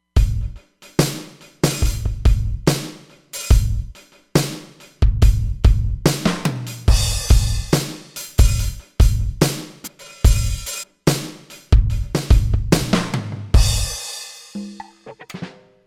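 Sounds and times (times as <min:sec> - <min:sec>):
Roland Fantom XR rock drum kit: 0:00.2 - 0:15.7.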